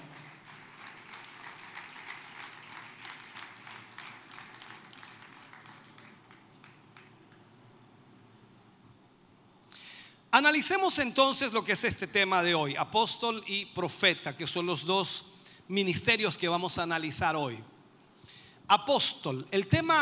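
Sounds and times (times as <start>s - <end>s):
crowd of people clapping steadily: 0.0s - 7.5s
speech: 10.4s - 17.7s, 18.7s - 20.0s.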